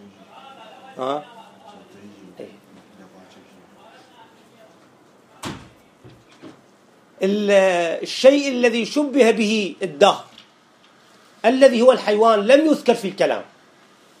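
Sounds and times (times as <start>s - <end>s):
speech: 1.0s - 1.4s, 7.2s - 10.3s, 11.4s - 13.5s
door swinging shut with a solid thump: 5.4s - 6.6s.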